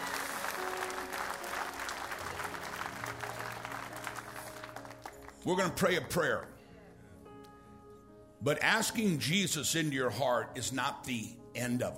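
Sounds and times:
large crowd clapping and applauding: 0.0s - 5.8s
speech: 5.4s - 6.5s, 8.4s - 11.9s.

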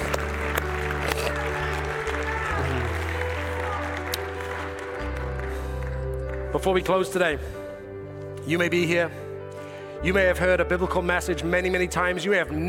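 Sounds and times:
church audience applauding and cheering: 0.0s - 7.3s
speech: 6.6s - 7.6s, 8.5s - 9.2s, 10.0s - 12.6s.

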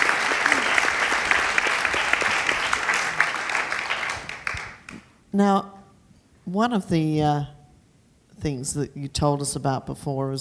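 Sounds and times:
audience applauding with many hands clapping: 0.0s - 5.1s
speech: 5.3s - 5.8s, 6.5s - 7.6s, 8.4s - 10.4s.

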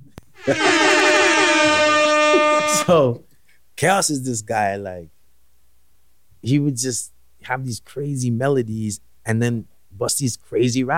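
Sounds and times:
air horn blast: 0.4s - 3.2s
speech: 0.5s - 1.0s, 2.7s - 5.2s, 6.4s - 10.9s.

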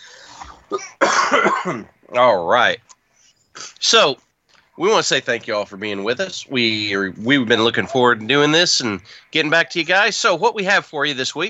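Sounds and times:
raspy breathy lead-in: 0.0s - 0.7s, 3.0s - 3.8s, 9.0s - 9.4s
harsh chesty coughs: 0.4s - 1.9s
speech: 0.7s - 2.9s, 3.6s - 4.2s, 4.8s - 11.4s.

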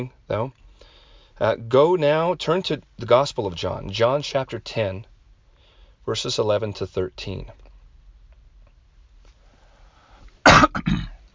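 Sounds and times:
speech: 0.0s - 0.6s, 1.4s - 5.1s, 6.0s - 7.6s
coughing: 10.4s - 11.3s.

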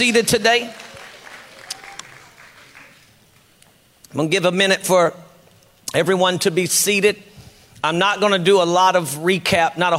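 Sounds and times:
speech: 0.0s - 0.8s, 4.1s - 5.2s, 5.9s - 9.9s
church audience clapping after a prayer: 0.0s - 3.8s.

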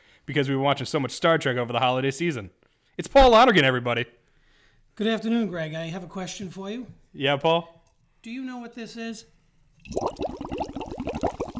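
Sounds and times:
speech: 0.3s - 4.2s, 5.0s - 10.5s
man blowing bubbles in water: 9.8s - 11.5s.

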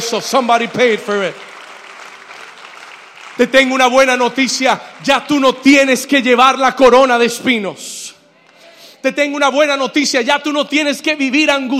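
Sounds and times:
speech: 0.0s - 1.5s, 3.4s - 8.1s, 9.0s - 11.7s
audience applauding: 0.2s - 6.4s.

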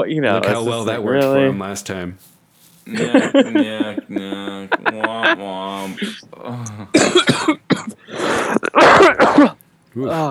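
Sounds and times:
speech: 0.0s - 2.3s, 2.9s - 10.2s
laughter: 0.2s - 10.2s
hard coughs into a microphone: 6.9s - 10.2s.

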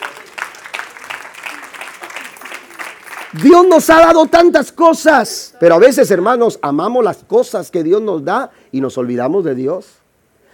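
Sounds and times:
audience applauding: 0.0s - 4.0s
speech: 3.3s - 10.0s.

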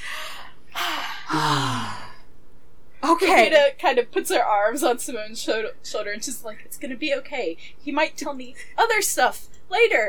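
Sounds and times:
deep breaths taken together: 0.0s - 2.3s
speech: 3.2s - 10.0s.

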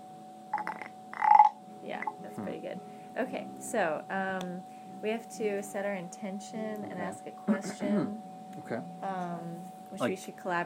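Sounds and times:
wooden toad croaker being rubbed: 0.6s - 1.5s
speech: 3.2s - 10.6s.

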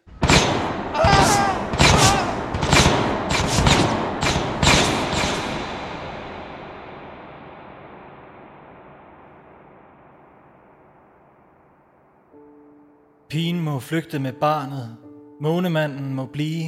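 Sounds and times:
loud gunshots in battle: 0.0s - 7.8s
heavy thuds in battle: 0.0s - 9.0s
long rumble: 0.0s - 12.7s
speech: 13.4s - 16.6s.

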